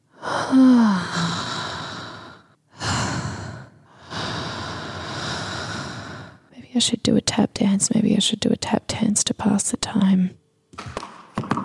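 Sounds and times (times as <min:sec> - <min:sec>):
deep breathing during a meditation: 0:00.1 - 0:06.5
speech: 0:00.5 - 0:00.8, 0:06.8 - 0:11.0.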